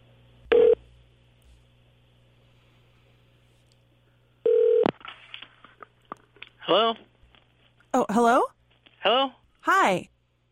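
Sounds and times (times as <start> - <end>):
telephone dialing tones from a phone in a studio: 4.5 - 4.9
speech: 6.7 - 7.1, 8.0 - 10.1.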